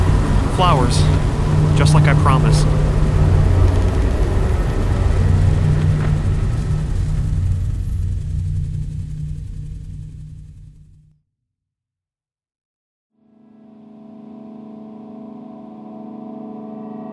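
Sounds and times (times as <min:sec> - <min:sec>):
storm rumbling: 0:00.0 - 0:11.0
speech: 0:00.6 - 0:02.8.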